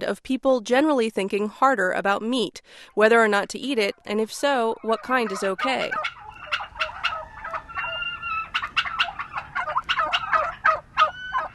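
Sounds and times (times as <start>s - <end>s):
speech: 0.0s - 6.2s
flock of turkeys gobbling in a farm pasture in Sparks Maryland: 4.7s - 11.5s.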